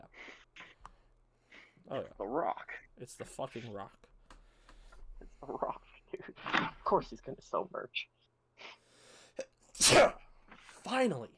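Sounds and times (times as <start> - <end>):
speech: 1.9 - 4.1, 5.4 - 8.2, 9.4 - 10.2, 10.9 - 11.3
sharp breathy inhales before a sneeze: 8.6 - 9.4
person sneezing: 9.8 - 10.3.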